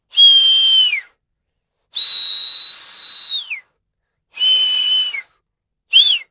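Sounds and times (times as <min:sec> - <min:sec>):
loud whistle: 0:00.1 - 0:01.1, 0:02.0 - 0:03.7, 0:04.4 - 0:05.3, 0:05.9 - 0:06.2.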